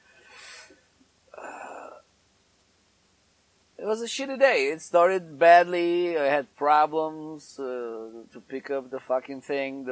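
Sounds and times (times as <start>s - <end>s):
soft breathy intake: 0.2s - 0.8s
speech: 3.9s - 9.9s.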